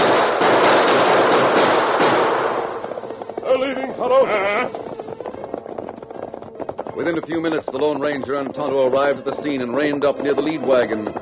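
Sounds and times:
dense burst of gunfire from attackers fleeing over the prairie: 0:00.0 - 0:04.0
speech: 0:07.1 - 0:11.2.

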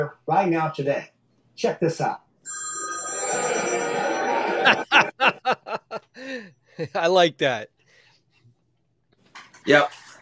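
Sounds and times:
speech: 0:00.0 - 0:02.2, 0:04.7 - 0:05.6, 0:06.2 - 0:07.8, 0:09.6 - 0:10.0
telephone ringing with electronic tone: 0:02.5 - 0:05.2
choppy laugh-like bursts: 0:04.6 - 0:07.2.

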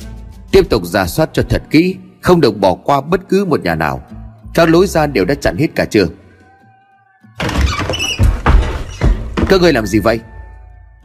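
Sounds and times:
speech: 0:00.6 - 0:06.2, 0:09.5 - 0:10.3
wooden door smashed open with a loud crash: 0:07.4 - 0:09.8
wood creaking: 0:07.4 - 0:10.0.

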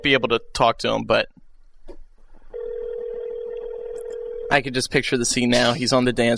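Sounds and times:
speech: 0:00.0 - 0:02.0, 0:04.5 - 0:06.3
telephone call ringing tone on the line: 0:02.5 - 0:04.6.

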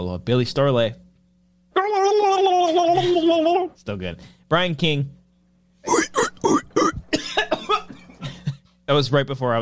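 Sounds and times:
speech: 0:00.0 - 0:01.0, 0:02.1 - 0:05.2, 0:08.9 - 0:09.6
harsh coughing: 0:05.9 - 0:08.7.

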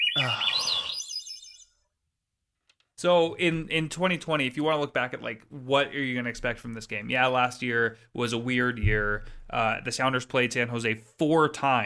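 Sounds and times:
bird chirping: 0:00.0 - 0:01.8
speech: 0:00.2 - 0:00.6, 0:03.0 - 0:11.8.

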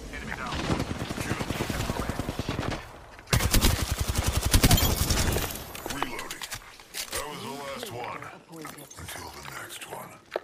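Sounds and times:
automatic gunfire in a video game: 0:00.5 - 0:05.5.

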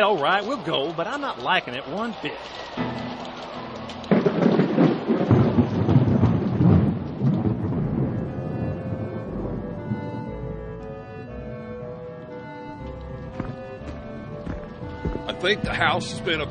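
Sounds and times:
speech: 0:00.0 - 0:03.0, 0:15.4 - 0:16.4
loud rumbling thunderclap: 0:04.1 - 0:10.9.

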